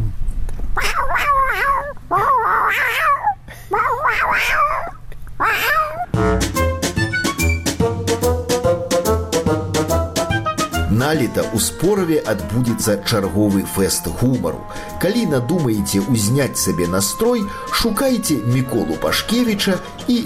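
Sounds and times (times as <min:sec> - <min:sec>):
person imitating a cat in heat yowling: 0:00.8 - 0:06.1
upbeat music with sharp plucked notes: 0:06.1 - 0:20.2
speech: 0:11.1 - 0:20.2.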